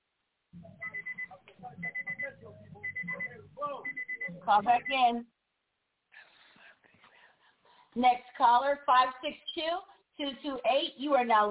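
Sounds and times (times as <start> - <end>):
alarm with shrill electronic beeps over a phone line: 0.6 - 5.1
caller's voice talking over a muffled phone line: 0.6 - 5.2
speech: 4.5 - 5.3, 8.0 - 11.4.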